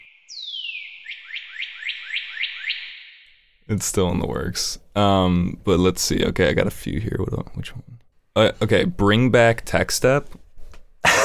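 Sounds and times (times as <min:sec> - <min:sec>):
bird whistle sound effect: 0:00.0 - 0:03.2
speech: 0:03.7 - 0:10.4.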